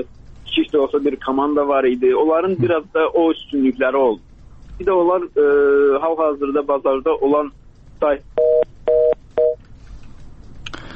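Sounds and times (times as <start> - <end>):
faint telephone line noise: 0.0 - 10.6
speech: 0.7 - 8.4
dual-pitch telephone tones after a call cut off: 8.4 - 9.6.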